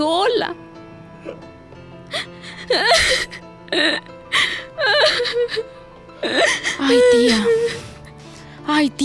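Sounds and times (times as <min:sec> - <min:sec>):
speech: 0:00.0 - 0:01.6, 0:02.7 - 0:04.1, 0:05.3 - 0:07.9, 0:08.7 - 0:09.0
woman sniffling: 0:02.1 - 0:08.6
woman weeping softly with shaky breaths and whimpers: 0:02.2 - 0:07.9.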